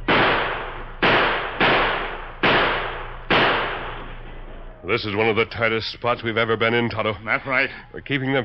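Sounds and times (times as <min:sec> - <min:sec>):
loud sharp gunshots with decay: 0:00.0 - 0:04.2
speech: 0:04.8 - 0:08.4.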